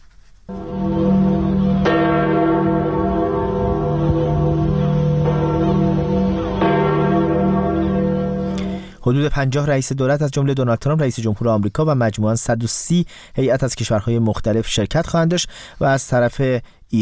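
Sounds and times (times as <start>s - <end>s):
church bells ringing: 0.5s - 9.0s
speech: 9.1s - 17.0s.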